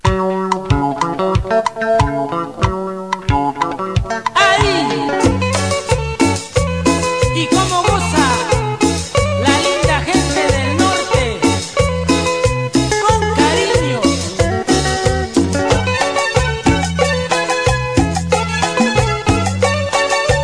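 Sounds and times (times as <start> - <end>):
cumbia music: 0.0 - 20.4.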